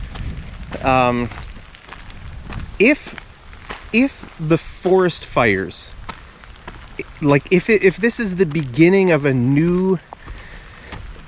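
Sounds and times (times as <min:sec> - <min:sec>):
steady rain pattering on surfaces outdoors: 0:00.0 - 0:11.2
speech: 0:00.7 - 0:01.5, 0:02.8 - 0:03.2, 0:03.9 - 0:06.0, 0:07.2 - 0:10.1.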